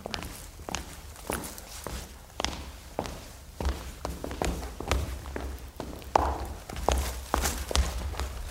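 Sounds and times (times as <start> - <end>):
woman's footsteps thudding at a walking pace: 3.7 - 8.4.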